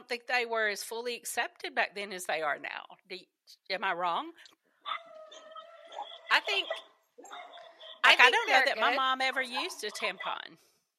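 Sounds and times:
speech: 0:00.1 - 0:04.6, 0:06.3 - 0:10.7
dogs barking with whining tones: 0:04.8 - 0:10.4.

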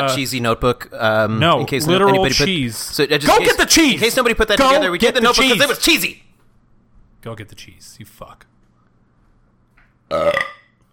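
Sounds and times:
speech: 0:00.0 - 0:06.2, 0:07.2 - 0:08.5, 0:10.1 - 0:10.6
person belching into the microphone: 0:10.1 - 0:10.8.

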